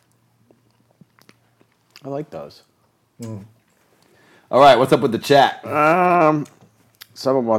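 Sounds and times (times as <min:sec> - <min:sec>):
people chewing food loudly: 0:00.0 - 0:02.0
speech: 0:02.0 - 0:03.6, 0:04.5 - 0:06.6, 0:07.2 - 0:07.5.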